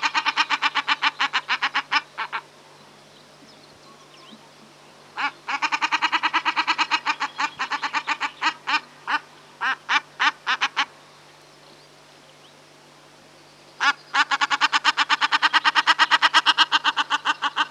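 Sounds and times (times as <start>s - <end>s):
common shelduck calling, Tadorna tadorna: 0.0s - 2.5s, 5.2s - 10.9s, 13.8s - 17.6s.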